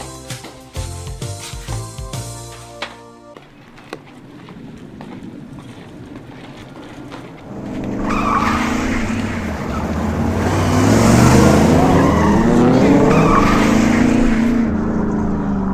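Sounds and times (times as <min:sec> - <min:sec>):
car tire noise on a road: 0:03.4 - 0:15.7
car engine roaring as it drives fast along a home road: 0:04.2 - 0:15.7.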